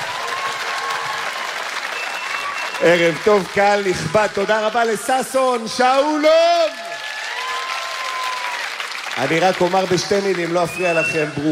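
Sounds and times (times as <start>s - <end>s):
audience applause for an orchestra at a festival in Jerusalem: 0.0s - 11.4s
speech: 2.8s - 6.8s, 9.2s - 11.4s.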